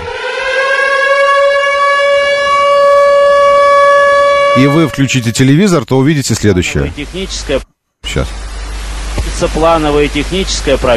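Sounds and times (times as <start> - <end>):
civil defense warning siren: 0.0 - 5.7
speech: 4.6 - 8.4, 9.4 - 10.9.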